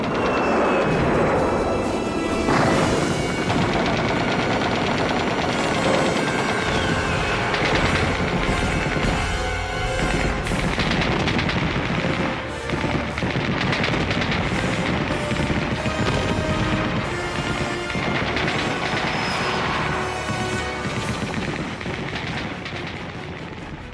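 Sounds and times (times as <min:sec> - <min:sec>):
artillery fire in a battle: 0:00.0 - 0:23.9
machine-gun bursts in a battle: 0:02.5 - 0:23.8.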